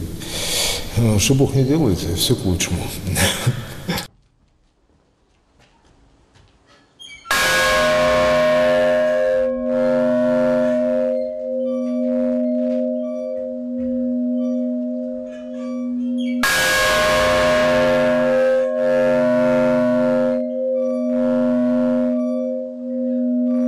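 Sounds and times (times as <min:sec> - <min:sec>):
speech: 0:01.0 - 0:03.6
large church bell ringing: 0:07.3 - 0:23.6.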